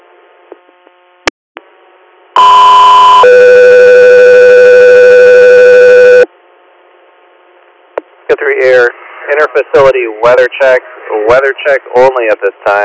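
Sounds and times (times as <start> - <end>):
radio dispatch alert tones for an air medical service: 2.4 - 6.2
speech: 8.5 - 12.8.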